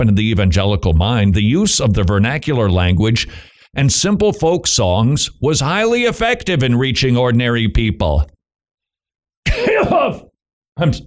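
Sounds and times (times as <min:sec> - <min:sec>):
speech: 0:00.0 - 0:08.3, 0:10.8 - 0:11.0
person clearing throat: 0:09.5 - 0:10.3.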